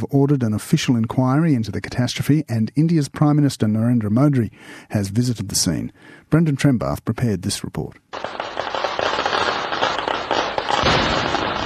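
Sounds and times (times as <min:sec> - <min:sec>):
speech: 0:00.0 - 0:08.4
string of fireworks exploding: 0:08.1 - 0:11.6.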